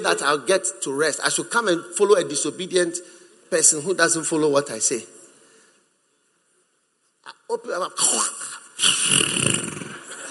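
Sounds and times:
speech: 0.0 - 5.2, 7.5 - 9.5
person imitating snoring: 8.8 - 10.2.

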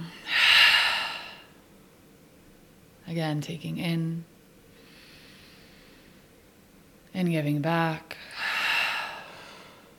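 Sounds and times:
deep inhale and open-mouth exhale during a guided breathing exercise: 0.2 - 1.6, 4.7 - 6.3, 8.3 - 9.9
speech: 3.1 - 4.3, 7.2 - 8.3.

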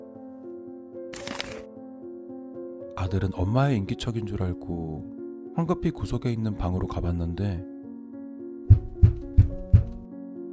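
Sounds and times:
paper being torn: 1.2 - 1.7
speech: 3.0 - 7.7.

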